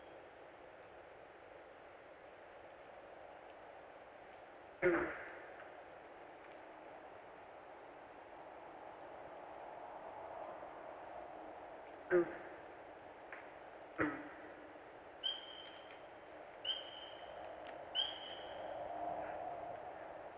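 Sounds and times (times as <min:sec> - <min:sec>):
steady outdoor hiss: 0:00.0 - 0:20.3
bird whistling short bright rising call: 0:15.2 - 0:15.9, 0:16.6 - 0:17.3, 0:18.0 - 0:18.6.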